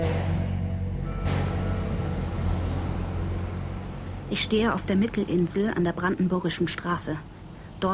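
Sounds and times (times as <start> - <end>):
traffic roar from cars speeding past on a four-lane street: 0.1 - 7.9
passing vehicle whoosh: 1.0 - 5.3
speech: 4.3 - 7.9.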